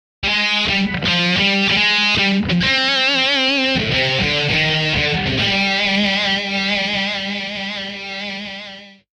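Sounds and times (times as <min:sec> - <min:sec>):
guitar riff startup sound: 0:00.2 - 0:09.1.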